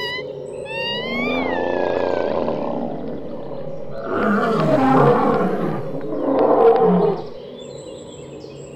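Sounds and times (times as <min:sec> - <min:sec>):
deep terrible roars of wild monsters: 0:00.8 - 0:07.4.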